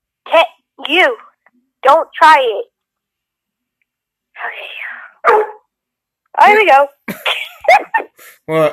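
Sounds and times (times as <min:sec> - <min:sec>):
speech: 0:00.3 - 0:02.7, 0:04.4 - 0:05.5, 0:06.4 - 0:08.7
dog barking: 0:05.2 - 0:05.7.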